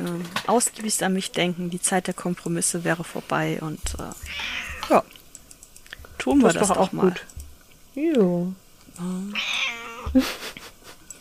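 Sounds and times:
speech: 0.5 - 5.2, 6.2 - 7.3, 8.0 - 10.6
cat yowling: 4.3 - 4.9, 9.3 - 10.1.

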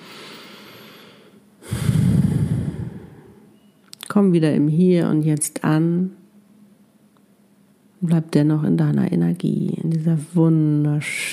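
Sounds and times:
deep breathing in and out during a guided relaxation exercise: 0.0 - 3.5
speech: 4.2 - 6.2, 8.0 - 11.3.

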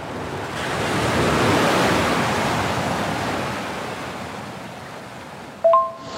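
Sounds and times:
Atlantic ocean waves crashing: 0.1 - 6.1
brief sharp tonal chirp: 5.6 - 6.1.

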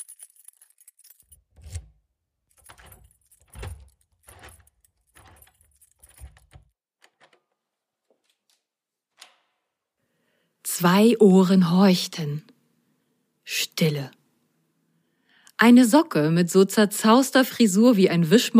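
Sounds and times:
key turning in a lock: 0.0 - 9.4
speech: 10.8 - 12.5, 13.8 - 14.2, 15.6 - 18.5.

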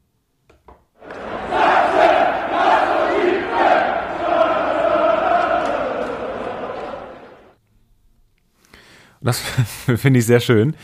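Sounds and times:
laughter: 1.0 - 7.5
large stadium crowd chanting a slogan: 1.0 - 7.6
speech: 9.3 - 10.8.

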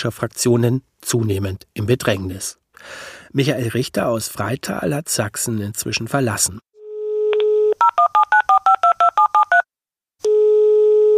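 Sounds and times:
speech: 0.0 - 6.7
telephone dial tone: 6.8 - 11.1.

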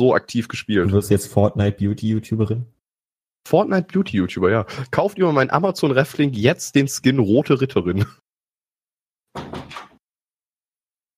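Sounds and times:
speech: 0.0 - 2.8, 3.4 - 8.2
door swinging shut with a thud and scraping rattle: 9.3 - 10.0.

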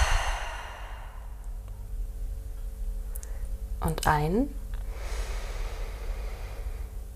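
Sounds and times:
breathy exhale after deep breath: 0.0 - 1.6, 4.9 - 7.0
quiet room hum: 0.0 - 7.1
faint small clicks: 3.1 - 3.4
speech: 3.8 - 4.6.

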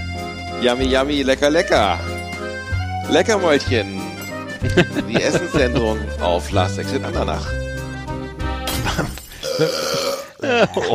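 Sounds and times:
speech: 0.6 - 2.1, 3.1 - 4.0, 4.6 - 7.6, 9.6 - 10.9
laughter: 4.6 - 6.1, 10.4 - 10.9
loud burps of different pitch: 8.7 - 10.4
long gurgling belch with wobbling rhythm: 9.4 - 10.4.

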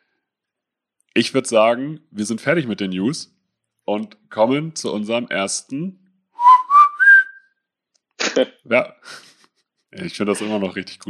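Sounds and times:
speech: 1.2 - 6.0, 8.4 - 9.3, 9.9 - 11.0
person whistling into a microphone: 6.4 - 7.6.

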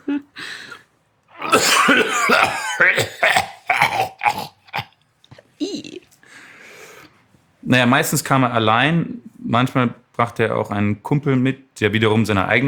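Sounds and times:
man's deep rattling guttural cough: 1.4 - 4.9
raspy throat-clearing: 1.4 - 5.4
speech: 1.6 - 3.1, 7.7 - 12.6.

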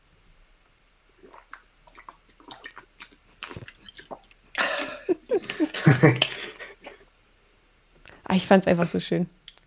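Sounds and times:
wet mouth slurps and swallows of someone drinking water: 1.2 - 4.9
person gulping drinking water: 1.2 - 6.6
laughter: 4.6 - 7.0
speech: 5.5 - 6.3, 8.4 - 9.4.

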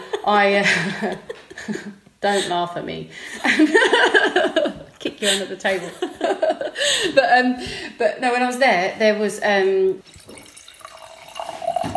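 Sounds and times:
speech: 0.2 - 10.2
laughter: 3.4 - 7.3
wine poured from a bottle into glasses: 10.0 - 11.9.

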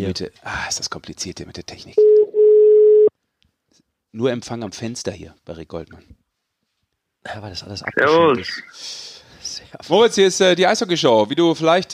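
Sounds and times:
speech: 0.0 - 2.2, 4.1 - 6.2, 7.2 - 9.1, 9.7 - 11.9
telephone ringing tone of a call being placed: 2.0 - 3.1.

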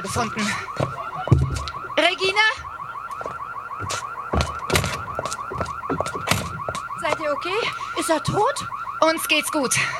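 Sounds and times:
speech: 0.0 - 1.1, 7.4 - 9.9
police-connected alarm system ringing with electronic warble: 0.0 - 9.9
thuds: 0.1 - 1.8, 3.1 - 7.2.

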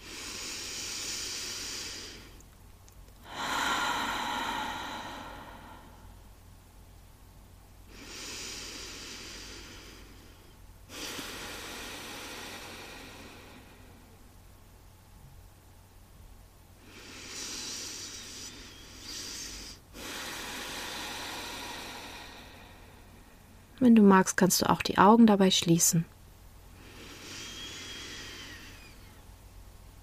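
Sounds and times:
slow deep breathing during a guided belly-breathing relaxation exercise: 0.0 - 2.5, 3.2 - 6.4, 7.9 - 14.4, 16.7 - 23.8, 26.7 - 29.4
speech: 23.8 - 26.1.

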